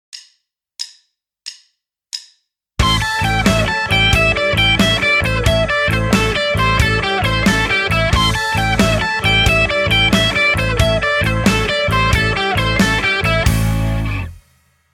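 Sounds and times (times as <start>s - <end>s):
alternate picked guitar blues lick: 2.8s - 14.4s.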